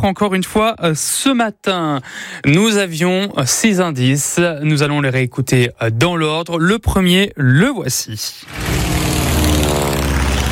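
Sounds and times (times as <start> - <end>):
speech: 0.0 - 9.1
propeller aircraft drone: 8.5 - 10.5.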